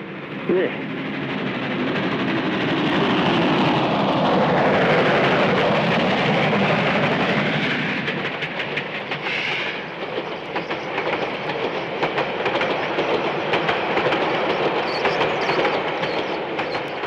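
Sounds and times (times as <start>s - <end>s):
train with two engines rumbling into National Park station at night: 0.0s - 17.0s
speech: 0.5s - 1.0s.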